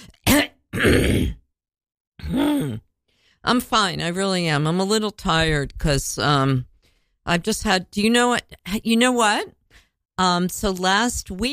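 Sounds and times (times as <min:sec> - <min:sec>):
person clearing throat with raspy hack: 0:00.0 - 0:01.4, 0:02.2 - 0:02.9
speech: 0:03.5 - 0:09.6, 0:10.2 - 0:11.5.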